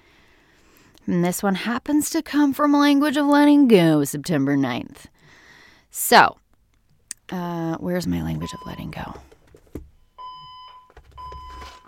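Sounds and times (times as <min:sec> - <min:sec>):
speech: 0:01.0 - 0:05.1, 0:06.0 - 0:06.4, 0:07.3 - 0:09.3
loud electronic fire alarm beeps: 0:08.4 - 0:09.1, 0:10.1 - 0:11.8.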